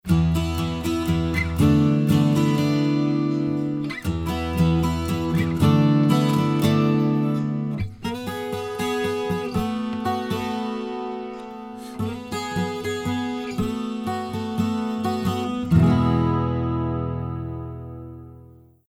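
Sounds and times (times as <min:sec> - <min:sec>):
dry guitar song recorded with Lewitt LCT 1040 microphone: 0:00.0 - 0:18.8.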